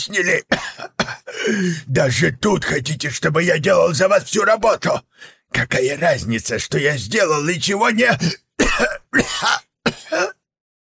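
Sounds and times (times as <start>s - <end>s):
speech: 0.0s - 10.3s
man coughing: 0.3s - 1.9s, 8.1s - 10.5s.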